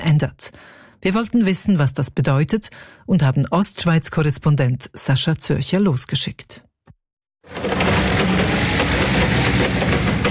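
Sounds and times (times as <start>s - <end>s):
speech: 0.0s - 6.7s
forklift engine hauling crates of freshly picked apples: 7.5s - 10.2s.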